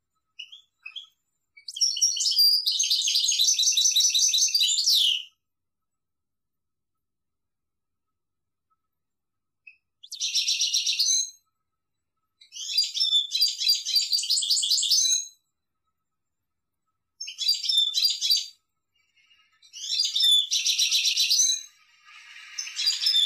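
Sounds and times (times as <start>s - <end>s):
European goldfinch song of liquid twittering and buzzy trills: 0.1s - 5.3s, 9.6s - 11.5s, 12.3s - 16.0s, 17.2s - 23.2s.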